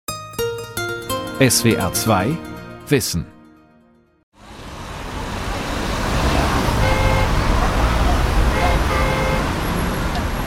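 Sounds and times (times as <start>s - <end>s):
speech: 1.4s - 3.3s
busy main road traffic feeding onto a motorway: 4.4s - 10.4s
car horns tooting: 6.4s - 10.4s.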